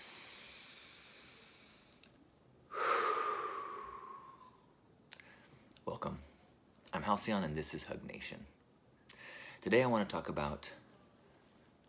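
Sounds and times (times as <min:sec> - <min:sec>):
deep breath: 0:00.0 - 0:05.7, 0:09.1 - 0:09.6
speech: 0:07.0 - 0:08.6, 0:09.6 - 0:10.8.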